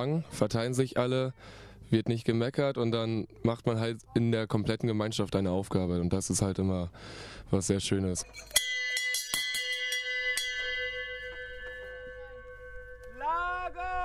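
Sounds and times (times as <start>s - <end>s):
speech: 0.0s - 8.6s
gong struck at a camp to open the evening gathering: 8.6s - 13.9s.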